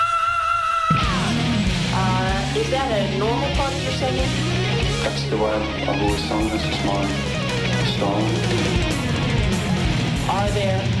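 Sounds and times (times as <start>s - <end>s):
person screaming: 0.0s - 1.7s
speech: 2.6s - 9.7s, 10.3s - 10.9s.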